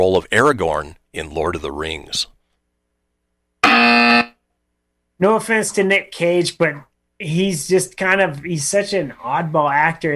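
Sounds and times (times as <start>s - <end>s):
speech: 0.0s - 2.4s, 3.7s - 4.2s, 5.2s - 10.1s
loud harsh buzzer: 3.6s - 4.4s.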